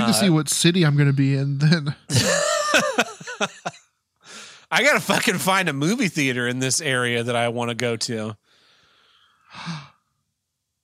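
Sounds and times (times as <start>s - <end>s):
faint hiss: 0.0s - 10.8s
speech: 0.1s - 3.8s, 4.7s - 8.5s, 9.5s - 9.9s
laughter: 2.1s - 3.8s
person gasping: 4.3s - 4.7s, 8.5s - 10.0s.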